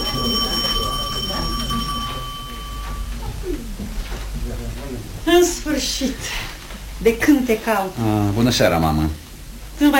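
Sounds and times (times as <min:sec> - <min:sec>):
bell ringing to signal the start: 0:00.0 - 0:03.4
crowd voices: 0:00.0 - 0:03.9
speech: 0:05.3 - 0:09.2, 0:09.8 - 0:09.9.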